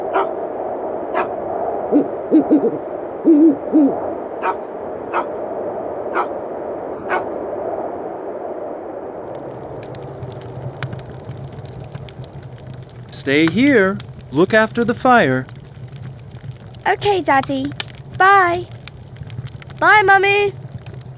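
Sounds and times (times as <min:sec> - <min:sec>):
owl hooting: 0:00.1 - 0:00.4, 0:01.9 - 0:05.3
sharp clicks: 0:09.3 - 0:21.1
speech: 0:13.3 - 0:15.5, 0:17.0 - 0:18.7, 0:19.8 - 0:20.6.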